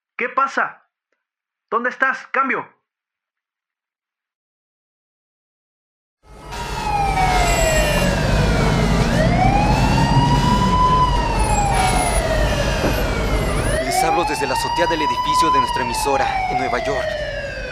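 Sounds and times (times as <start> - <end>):
speech: 0.2 - 0.8, 1.7 - 2.8, 14.3 - 17.3
loud evacuation alarm wailing with sweeping pitch: 6.3 - 17.7.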